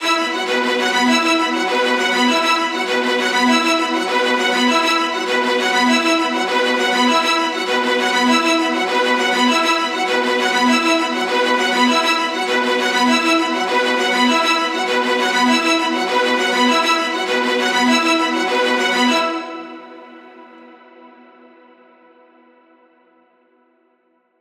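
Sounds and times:
viola ostinato in E: 0.0s - 20.1s.

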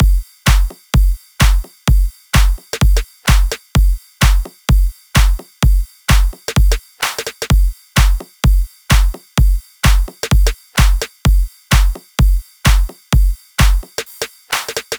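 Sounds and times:
house drum loop: 0.0s - 14.9s.

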